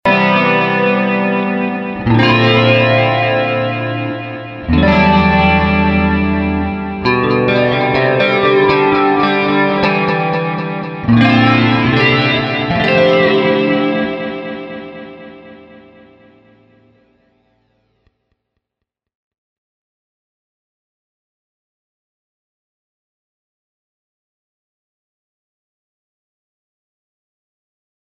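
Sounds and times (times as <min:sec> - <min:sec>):
clean guitar with flanger: 0:00.0 - 0:18.1.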